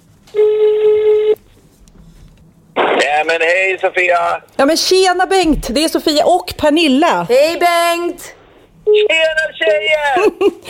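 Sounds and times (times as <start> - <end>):
steady electronic telephone tone as a call is placed: 0.3 - 1.4
speech: 3.2 - 10.6.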